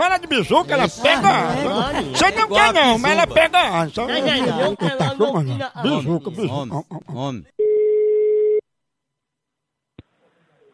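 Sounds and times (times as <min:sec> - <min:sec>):
speech: 0:00.2 - 0:07.6
laughter: 0:00.3 - 0:07.5
telephone tone as a call is placed: 0:07.6 - 0:08.6.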